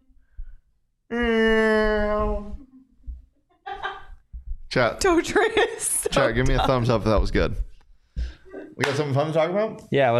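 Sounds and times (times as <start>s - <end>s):
person imitating a cat meow: 1.1s - 2.6s
speech: 4.7s - 7.7s, 8.8s - 10.1s.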